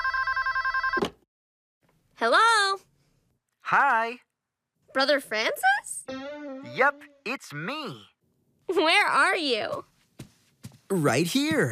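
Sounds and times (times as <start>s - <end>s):
telephone bell ringing with a rapid trill: 0.0s - 1.1s
speech: 2.2s - 2.8s, 3.7s - 4.3s, 5.0s - 6.2s, 6.8s - 8.1s, 8.7s - 9.9s, 10.9s - 11.7s.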